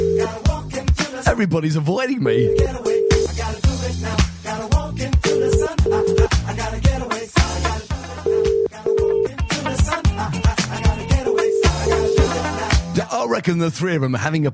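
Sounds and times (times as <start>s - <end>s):
outgoing phone call ringing tone: 0.0s - 0.4s, 2.3s - 3.4s, 5.3s - 6.3s, 8.2s - 9.4s, 11.2s - 12.4s
busy loud rhythmic music: 0.0s - 1.3s, 2.6s - 13.1s
speech: 1.4s - 2.9s, 13.3s - 14.5s.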